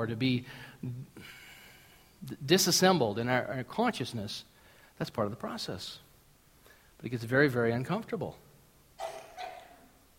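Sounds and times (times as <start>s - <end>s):
speech: 0.0s - 1.4s, 2.2s - 6.0s, 7.0s - 8.4s
person sneezing: 9.0s - 10.0s.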